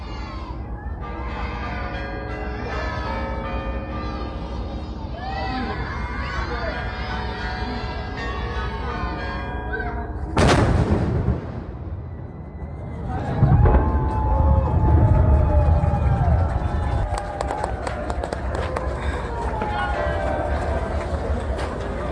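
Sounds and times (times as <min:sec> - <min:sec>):
busy outdoor crowd murmur and bustle: 0:00.0 - 0:22.1
noon cannon shot from signal gun: 0:10.4 - 0:12.0.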